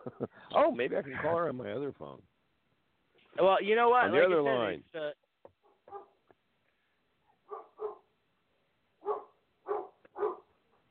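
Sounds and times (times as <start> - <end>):
speech: 0.0 - 2.3, 3.4 - 5.2
dog barking: 5.6 - 6.2, 7.4 - 8.1, 9.0 - 10.8.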